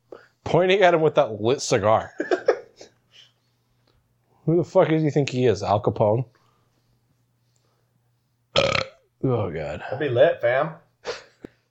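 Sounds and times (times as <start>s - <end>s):
speech: 0.5s - 2.4s, 4.5s - 6.4s, 9.2s - 10.8s
loud burp: 8.6s - 9.0s.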